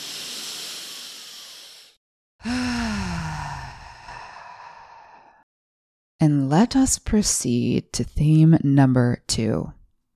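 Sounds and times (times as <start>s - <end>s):
slow deep breath taken during a guided breathing exercise: 0.0s - 5.5s
speech: 6.2s - 9.8s.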